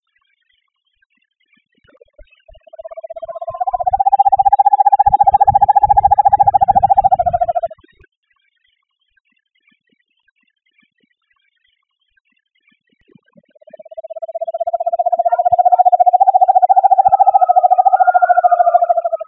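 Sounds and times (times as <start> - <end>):
Long-tufted screech owl Megascops sanctaecatarinae calling: 2.7 - 7.7, 13.8 - 19.2.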